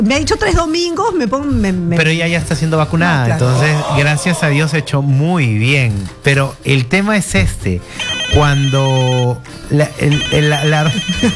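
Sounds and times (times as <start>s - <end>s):
speech: 0.0s - 11.3s
telephone ringing with an electronic ringtone for an incoming call: 8.0s - 9.4s, 10.1s - 11.3s.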